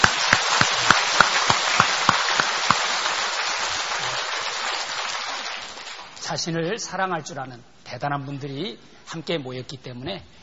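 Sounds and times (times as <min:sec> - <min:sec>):
audience applause: 0:00.0 - 0:06.2
speech: 0:06.3 - 0:10.4.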